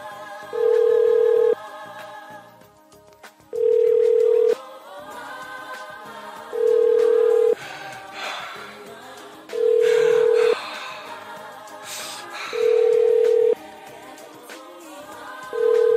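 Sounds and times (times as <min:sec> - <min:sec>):
telephone ringback tones as a call goes through: 0:00.6 - 0:01.6, 0:03.6 - 0:04.6, 0:06.6 - 0:07.6, 0:09.6 - 0:10.4, 0:12.6 - 0:13.6, 0:15.6 - 0:15.9.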